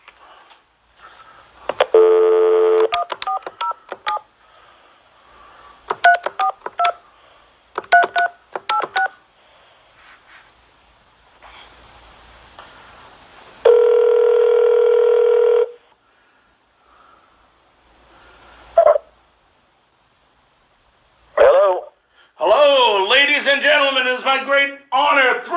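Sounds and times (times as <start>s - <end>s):
faint telephone line hiss: 0.0s - 25.5s
loud steady telephone ringing tone: 1.9s - 3.8s, 13.7s - 15.8s
touch-tone telephone keypad dialing beeps: 2.7s - 4.2s, 5.9s - 7.0s, 7.8s - 9.1s.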